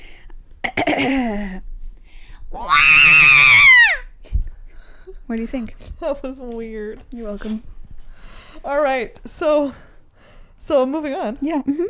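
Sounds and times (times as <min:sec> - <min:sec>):
speech: 0:00.8 - 0:01.7, 0:05.3 - 0:07.7, 0:08.6 - 0:09.9, 0:10.7 - 0:11.8
person imitating a robot screaming: 0:02.6 - 0:04.0.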